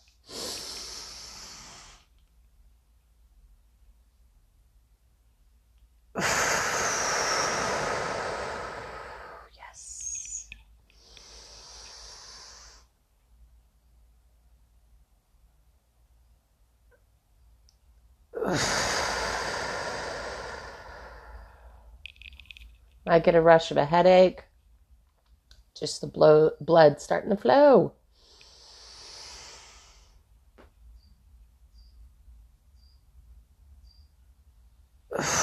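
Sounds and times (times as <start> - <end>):
deep forceful breathing during a breathing exercise: 0.2 - 2.1, 6.2 - 9.7, 11.0 - 12.9, 18.4 - 22.0, 28.1 - 30.2, 35.1 - 35.4
speech: 23.1 - 24.5, 25.8 - 28.0.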